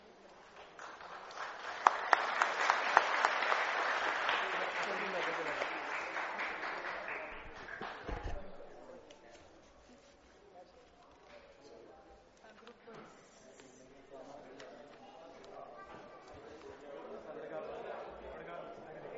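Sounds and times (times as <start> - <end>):
audience applause at a school prize ceremony: 0.5 - 8.2.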